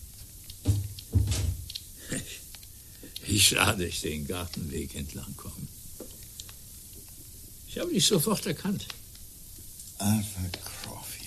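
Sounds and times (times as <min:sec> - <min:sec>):
door being closed with dull low thuds: 0:00.6 - 0:01.7
light clattering: 0:00.6 - 0:01.8
speech: 0:03.4 - 0:05.8, 0:07.8 - 0:09.0, 0:10.0 - 0:10.7.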